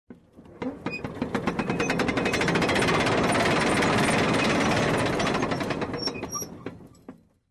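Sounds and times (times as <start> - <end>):
metal gear chains rolling: 1.5 - 6.4.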